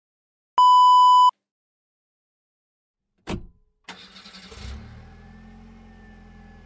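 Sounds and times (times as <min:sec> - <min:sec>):
short electronic beep: 0:00.6 - 0:01.3
car engine cranking to life and idling: 0:03.9 - 0:06.6.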